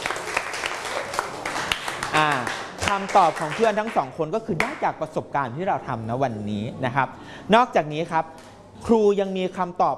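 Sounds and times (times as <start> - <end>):
students in a classroom applauding classmates: 0.0 - 4.8
speech: 2.2 - 9.9.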